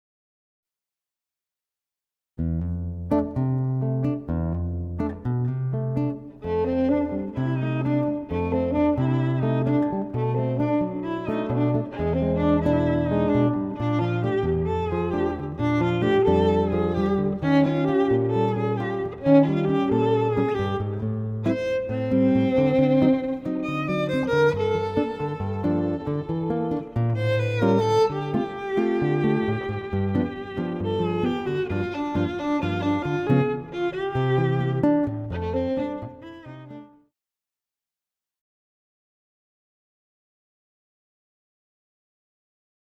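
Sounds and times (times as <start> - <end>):
guitar: 2.4 - 37.0
violin: 5.8 - 37.0.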